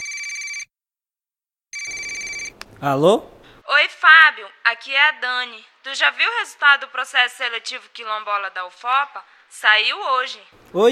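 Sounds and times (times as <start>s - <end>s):
telephone ringing with bright buzzing ring bursts: 0.0s - 0.7s, 1.7s - 2.6s
speech: 2.8s - 10.9s.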